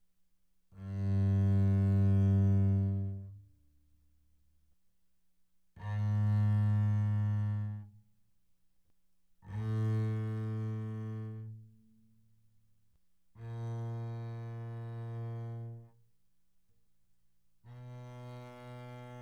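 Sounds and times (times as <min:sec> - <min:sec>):
double bass bowed on the G string: 0:00.8 - 0:03.4, 0:05.8 - 0:07.8, 0:09.5 - 0:11.6, 0:13.4 - 0:15.9.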